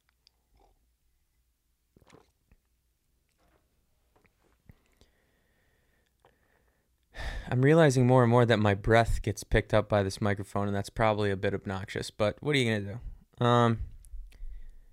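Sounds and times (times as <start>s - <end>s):
person sipping coffee: 0.1s - 0.8s, 1.9s - 2.7s, 4.2s - 5.1s
speech: 7.5s - 13.9s.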